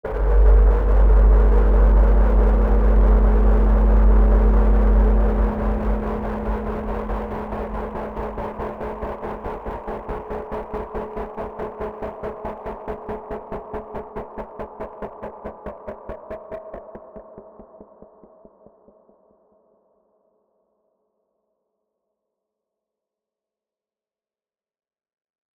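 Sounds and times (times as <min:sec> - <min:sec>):
underwater ambience: 0:00.1 - 0:10.0.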